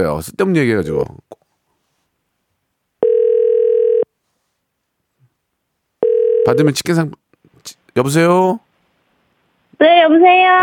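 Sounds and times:
speech: 0:00.0 - 0:01.3, 0:06.4 - 0:08.6, 0:09.8 - 0:10.6
telephone ringback tone while placing call: 0:03.0 - 0:04.1, 0:06.0 - 0:06.6.

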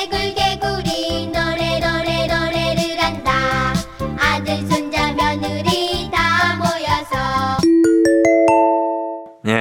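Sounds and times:
bright bouncy Korean children's song about a frog: 0:00.0 - 0:07.8
ringing bell-like chimes: 0:07.6 - 0:09.3.

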